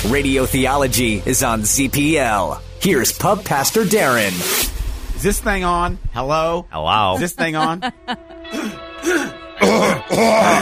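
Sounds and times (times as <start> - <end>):
speech: 0.0 - 10.6
laughter: 7.1 - 10.6
man clearing his throat: 8.5 - 10.6.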